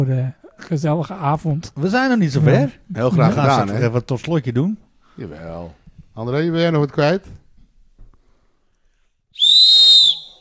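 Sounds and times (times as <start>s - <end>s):
speech: 0.0s - 7.4s
sharp shrill whistle blast: 9.3s - 10.4s.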